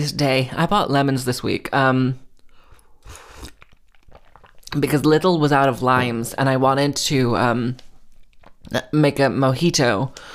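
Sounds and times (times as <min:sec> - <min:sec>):
speech: 0:00.0 - 0:02.2, 0:04.7 - 0:07.8, 0:08.7 - 0:10.3
person slurping hot tea: 0:02.4 - 0:04.8
wet mouth clicks: 0:02.4 - 0:04.8, 0:08.1 - 0:08.7.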